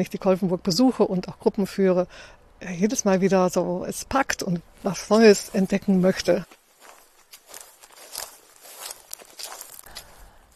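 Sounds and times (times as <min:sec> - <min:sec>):
speech: 0:00.0 - 0:06.6
footsteps crunching along an outdoor path toward a pond in Billerbeck: 0:04.7 - 0:10.5.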